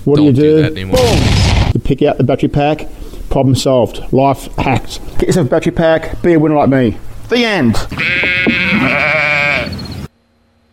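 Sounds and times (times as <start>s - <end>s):
speech: 0.0s - 8.2s, 8.8s - 9.2s
goat bleating: 7.8s - 9.9s.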